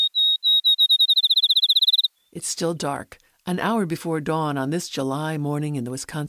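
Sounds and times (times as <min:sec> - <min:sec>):
field sparrow singing: 0:00.0 - 0:02.4
speech: 0:02.3 - 0:06.2.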